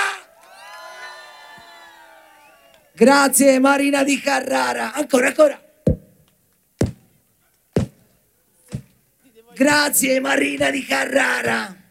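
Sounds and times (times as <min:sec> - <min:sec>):
large outdoor concert crowd cheering and shouting: 0:00.0 - 0:02.8
speech: 0:03.0 - 0:05.6, 0:09.6 - 0:11.8.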